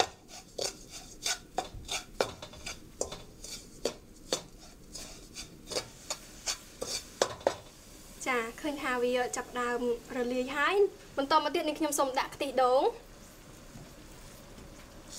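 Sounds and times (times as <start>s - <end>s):
spoon scraping and rubbing against a pot stirring sugar to dissolve it: 0.0s - 7.7s
speech: 9.0s - 13.1s.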